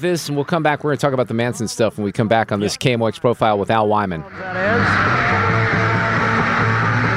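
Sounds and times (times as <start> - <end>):
speech: 0.0 - 5.5
concert crowd screaming and shouting: 4.3 - 7.1.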